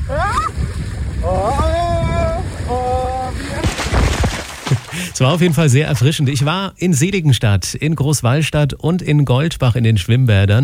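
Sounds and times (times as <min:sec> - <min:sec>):
person whooping and shouting excitedly: 0:00.0 - 0:00.5, 0:01.2 - 0:03.6
rushing splashing water on a water slide ride: 0:00.1 - 0:05.6
speech: 0:05.2 - 0:10.6.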